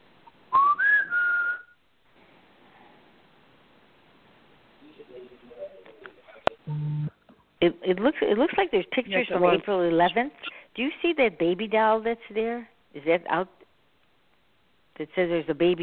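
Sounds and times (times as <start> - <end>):
short rising whistle in a doorway: 0.5 - 1.8
brief low electronic buzz: 6.6 - 7.1
speech: 7.6 - 13.6, 15.0 - 15.8.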